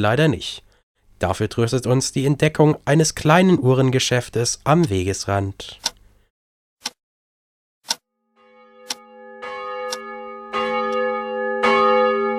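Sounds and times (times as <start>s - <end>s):
speech: 0.0s - 0.6s, 1.2s - 5.9s
church bell ringing: 8.3s - 12.3s.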